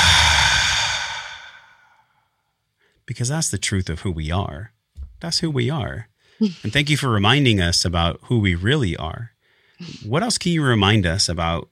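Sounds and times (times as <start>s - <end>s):
long deep breath let out through the mouth: 0.0s - 2.0s
speech: 3.1s - 11.7s.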